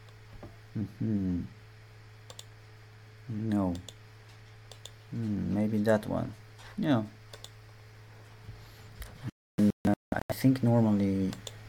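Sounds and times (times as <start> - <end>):
murmured vocal sounds: 0.8 - 1.5, 5.1 - 5.7
speech: 0.8 - 1.6, 3.3 - 4.0, 5.1 - 7.2, 10.4 - 11.5
computer keyboard clicks: 2.3 - 2.5, 4.7 - 5.0, 7.3 - 7.6.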